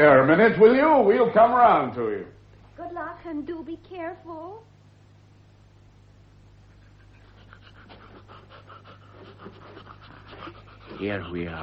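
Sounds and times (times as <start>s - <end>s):
speech: 0.0s - 4.7s, 11.0s - 11.6s
low constant hum: 0.0s - 11.6s
old dog panting: 6.6s - 11.6s.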